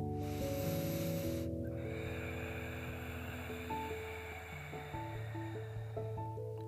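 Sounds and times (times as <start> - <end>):
slow hissing ujjayi ocean breath through narrowed throat with mouth closed: 0.0 - 6.6
steady bed of sustained droning musical tones: 0.0 - 6.6.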